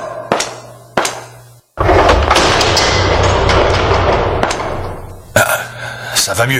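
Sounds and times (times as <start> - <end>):
heavy door slamming: 1.8 - 5.5
loud dense rumbling clatter: 1.8 - 5.5
speech: 6.4 - 6.5.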